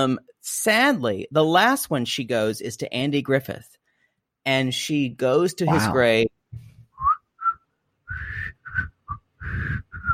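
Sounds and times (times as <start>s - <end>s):
speech: 0.0s - 3.8s, 4.4s - 6.6s
person whistling a TV theme tune: 7.0s - 10.1s.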